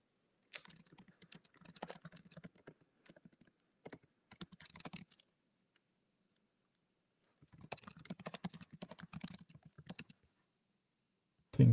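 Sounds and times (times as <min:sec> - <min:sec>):
rapid clattering keystrokes on a computer keyboard: 0:00.6 - 0:05.3, 0:07.4 - 0:10.2
speech: 0:11.6 - 0:11.7.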